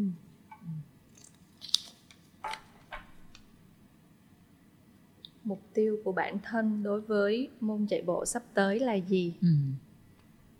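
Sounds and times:
slips of paper rustling as a hand rummages through a box: 0:01.1 - 0:02.8
speech: 0:05.5 - 0:09.8.

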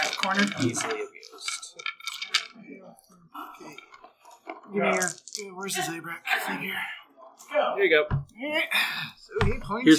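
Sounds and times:
dice tumbling across a tabletop: 0:00.0 - 0:02.6, 0:04.8 - 0:05.5
speech: 0:00.2 - 0:01.0, 0:04.7 - 0:09.9.

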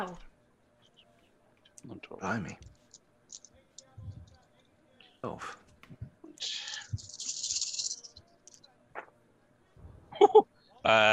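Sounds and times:
speech: 0:00.0 - 0:00.3, 0:01.8 - 0:02.7, 0:05.2 - 0:05.6, 0:10.2 - 0:11.1
twelve dice rattling and rolling: 0:02.8 - 0:03.9, 0:06.4 - 0:08.7.

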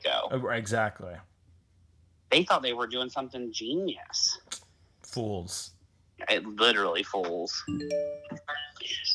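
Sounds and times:
speech: 0:00.3 - 0:01.3, 0:02.3 - 0:04.4, 0:05.1 - 0:09.1
computer electronic notification chime: 0:07.7 - 0:08.4.

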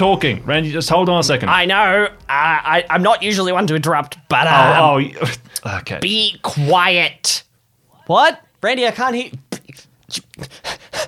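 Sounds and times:
speech: 0:00.0 - 0:07.4, 0:08.1 - 0:09.4, 0:10.1 - 0:10.7
person panting heavily from running up: 0:10.4 - 0:11.0.

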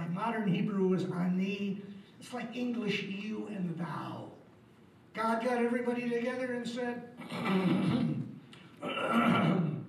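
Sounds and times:
speech: 0:00.2 - 0:04.4, 0:05.2 - 0:08.2, 0:08.8 - 0:09.7
throat clearing acted out by a voice: 0:07.2 - 0:09.8.

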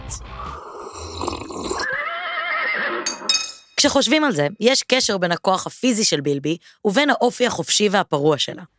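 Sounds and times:
horse neighing: 0:01.5 - 0:03.2
speech: 0:03.8 - 0:08.7.

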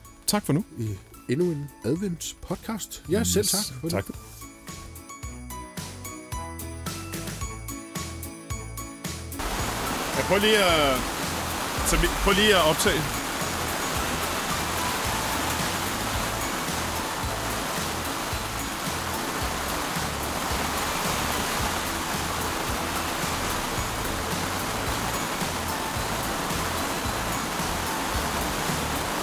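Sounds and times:
speech: 0:00.3 - 0:04.4, 0:10.3 - 0:11.2, 0:11.9 - 0:13.2
rain pouring down outside: 0:09.4 - 0:29.2.

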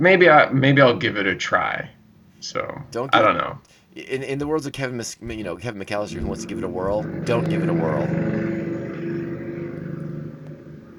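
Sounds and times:
speech: 0:00.0 - 0:08.4
laughter: 0:03.0 - 0:03.4, 0:04.0 - 0:08.2
motorcycle driving past outside: 0:06.0 - 0:10.9.

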